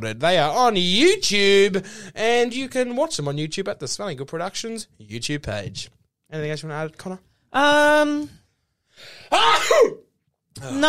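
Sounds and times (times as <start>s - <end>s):
speech: 0.0s - 8.4s, 9.0s - 10.8s
person sneezing: 9.0s - 10.1s.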